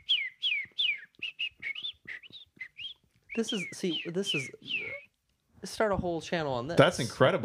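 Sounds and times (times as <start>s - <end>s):
person whistling an imitation bird call: 0.0s - 5.1s
speech: 3.4s - 4.8s, 5.7s - 7.4s.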